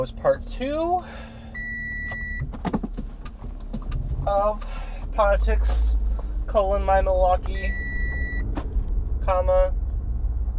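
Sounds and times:
speech: 0:00.0 - 0:01.3, 0:04.2 - 0:07.8, 0:09.3 - 0:09.8
car road rumble: 0:00.0 - 0:10.5
clicks and light rattles: 0:02.1 - 0:04.8.

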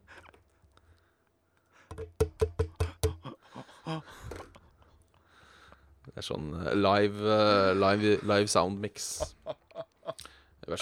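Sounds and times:
pen tapping on a plastic webcam: 0:01.9 - 0:03.2
speech: 0:03.9 - 0:04.3, 0:06.2 - 0:09.4.

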